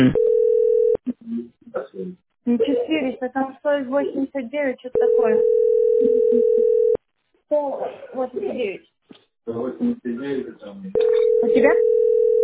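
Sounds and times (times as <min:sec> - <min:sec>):
speech: 0:00.0 - 0:00.2, 0:03.2 - 0:06.9, 0:07.5 - 0:12.4
steady electronic mobile phone tone: 0:00.0 - 0:01.0, 0:05.0 - 0:07.0, 0:11.0 - 0:12.4.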